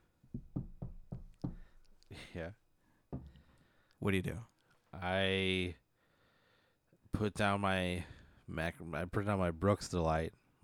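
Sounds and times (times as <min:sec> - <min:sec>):
firm knocks on a wooden door: 0:00.3 - 0:01.7, 0:03.1 - 0:03.4
speech: 0:02.1 - 0:02.6, 0:04.0 - 0:05.8, 0:07.1 - 0:10.6.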